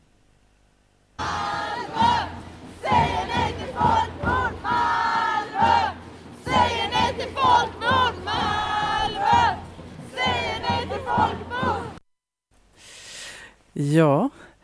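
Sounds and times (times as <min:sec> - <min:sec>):
large protest crowd chanting slogans at a demonstration: 0:01.2 - 0:12.0
speech: 0:13.8 - 0:14.4.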